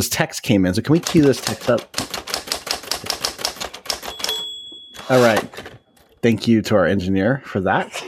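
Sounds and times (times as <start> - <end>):
speech: 0.0 - 2.2, 5.1 - 8.0
typewriter keystrokes: 0.9 - 4.4
typewriter bell ding: 3.5 - 6.0.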